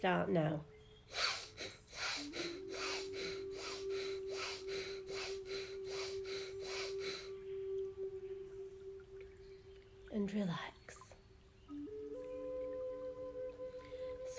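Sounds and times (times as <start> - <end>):
speech: 0.0 - 1.3, 10.2 - 10.8
steady low tone: 0.0 - 14.3
rapid forceful in-and-out breaths of a paced breathing exercise: 1.1 - 7.3.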